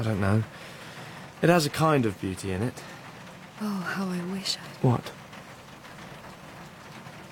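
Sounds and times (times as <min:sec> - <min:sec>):
speech: 0:00.0 - 0:00.8, 0:01.4 - 0:03.0, 0:03.6 - 0:05.2
steady rain: 0:00.0 - 0:07.3.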